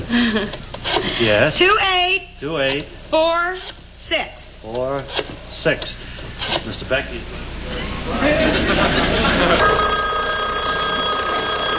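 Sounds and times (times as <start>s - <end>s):
laughter: 0.0s - 1.3s, 7.3s - 11.7s
speech: 0.1s - 10.0s
telephone bell ringing: 9.3s - 11.7s.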